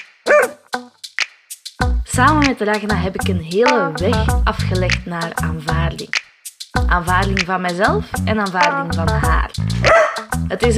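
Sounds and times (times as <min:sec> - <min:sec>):
dog barking: 0:00.3 - 0:00.6, 0:09.9 - 0:10.2
speech: 0:02.2 - 0:06.2, 0:06.9 - 0:10.7.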